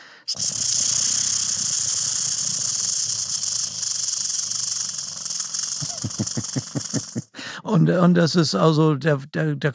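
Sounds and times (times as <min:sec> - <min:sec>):
speech: 0:00.3 - 0:00.8, 0:07.7 - 0:09.7
bird's rattling churring song: 0:00.3 - 0:07.2.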